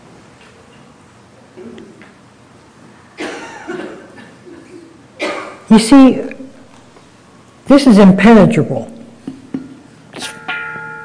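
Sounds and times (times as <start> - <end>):
speech: 1.6 - 2.2, 5.7 - 6.4, 7.7 - 9.0
bell being struck: 10.2 - 11.0.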